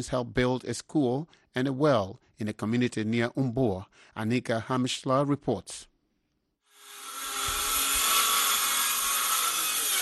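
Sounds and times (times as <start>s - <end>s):
speech: 0.0s - 5.9s
power drill roaring: 6.7s - 10.0s.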